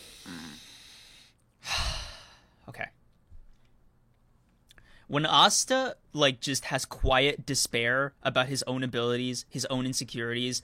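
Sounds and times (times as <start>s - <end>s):
deep breath drawn in: 0.0s - 2.6s
speech: 5.1s - 10.6s.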